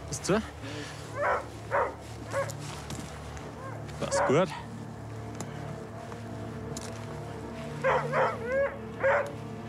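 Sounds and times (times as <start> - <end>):
speech: 0.1 - 1.4, 4.1 - 4.7
stressed dog barking: 1.1 - 2.6, 3.6 - 4.4, 7.8 - 9.4.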